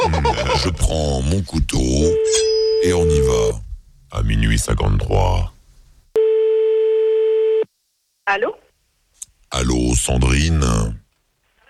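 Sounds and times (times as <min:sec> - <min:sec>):
laughter: 0:00.0 - 0:01.1
speech: 0:00.6 - 0:05.6, 0:08.3 - 0:08.6, 0:09.5 - 0:11.0
steady telephone tone as a call is dialed: 0:02.0 - 0:03.4, 0:06.2 - 0:07.7.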